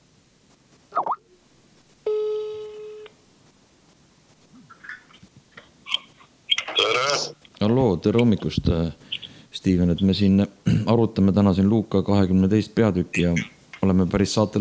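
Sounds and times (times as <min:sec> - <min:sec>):
short telephone blips: 0:00.9 - 0:01.2
speech: 0:06.9 - 0:14.5.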